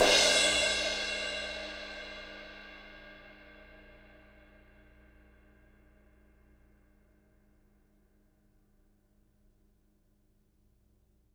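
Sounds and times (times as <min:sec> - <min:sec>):
acoustic crash cymbal: 0:00.0 - 0:04.6.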